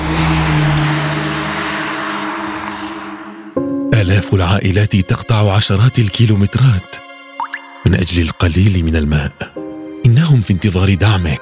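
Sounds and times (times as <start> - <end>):
car engine humming and revving as the vehicle drives on: 0.0 - 3.9
speech: 4.0 - 7.1, 7.9 - 11.4.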